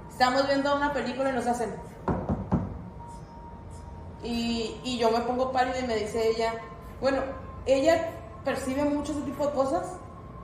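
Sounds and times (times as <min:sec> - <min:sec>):
speech: 0:00.2 - 0:02.1, 0:04.2 - 0:10.0
imitated knocks on a wooden closet door: 0:02.1 - 0:02.7.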